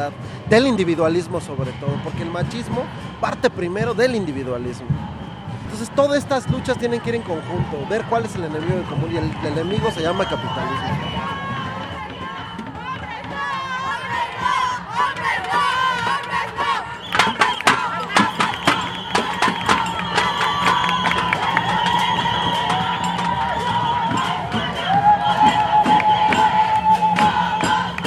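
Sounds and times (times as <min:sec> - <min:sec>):
speech: 0:00.0 - 0:11.1
large women-only protest crowd chanting and shouting slogans: 0:06.5 - 0:28.0
rhythmic clapping or banging at a protest: 0:15.1 - 0:28.0.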